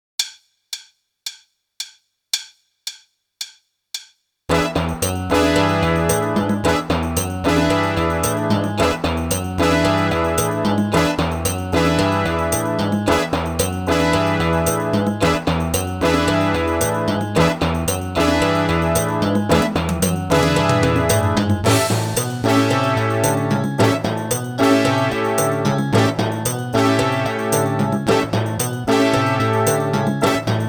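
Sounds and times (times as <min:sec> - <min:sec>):
bass drum in combinations: 0:04.5 - 0:30.6
snare drum in combinations: 0:19.5 - 0:24.4.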